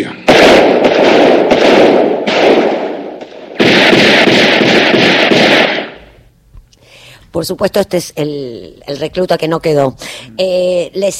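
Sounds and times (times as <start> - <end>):
gunfire volley in a film scene: 0.2 - 6.0
speech: 7.4 - 11.1.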